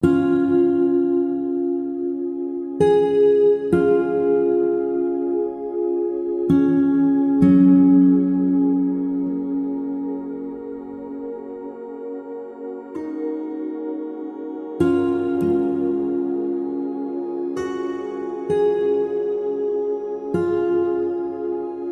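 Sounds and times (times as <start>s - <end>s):
acoustic guitar: 0.0s - 21.9s.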